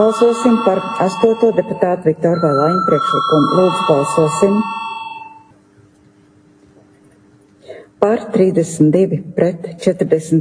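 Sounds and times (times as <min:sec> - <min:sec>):
speech: 0:00.0 - 0:04.8, 0:08.0 - 0:10.3
bell or chime calling a parliamentary vote: 0:00.0 - 0:05.5.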